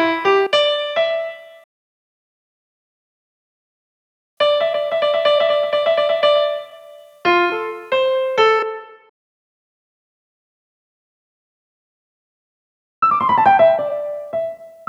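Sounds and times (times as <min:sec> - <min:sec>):
piano: 0:00.0 - 0:01.7, 0:04.4 - 0:09.1, 0:13.0 - 0:14.8.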